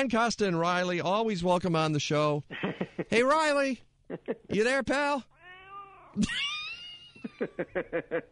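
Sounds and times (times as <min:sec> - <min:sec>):
speech: 0:00.0 - 0:05.3, 0:06.2 - 0:06.6, 0:07.4 - 0:08.3
laughter: 0:02.5 - 0:03.1, 0:06.2 - 0:08.3
cat yowling meow: 0:05.4 - 0:06.2.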